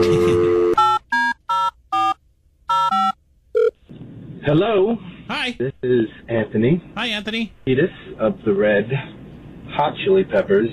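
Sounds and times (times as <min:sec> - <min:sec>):
telephone keypad dialing tones: 0:00.5 - 0:03.8
speech: 0:04.5 - 0:09.2, 0:09.8 - 0:10.7.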